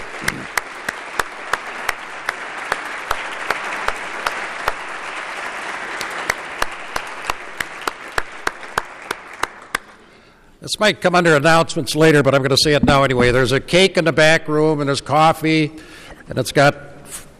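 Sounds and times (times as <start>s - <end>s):
room full of people applauding: 0.0s - 10.0s
speech: 10.7s - 16.9s.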